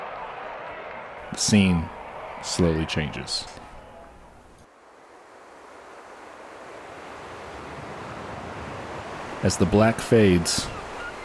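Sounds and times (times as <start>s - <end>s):
light breeze: 1.2s - 11.2s
speech: 1.3s - 3.6s, 9.4s - 10.8s
ocean waves lapping against a sandy beach: 4.7s - 11.2s.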